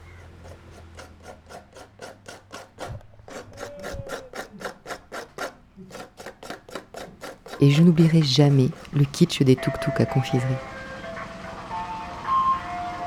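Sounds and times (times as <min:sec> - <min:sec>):
coconut being grated: 0:00.0 - 0:10.8
speech: 0:07.6 - 0:10.7.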